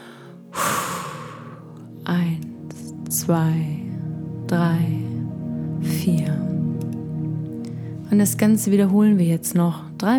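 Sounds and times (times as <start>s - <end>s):
slow exhalation during a guided breathing exercise: 0.0s - 1.8s
speech: 2.1s - 2.5s, 3.1s - 3.8s, 4.5s - 5.1s, 5.8s - 6.6s, 8.1s - 10.1s.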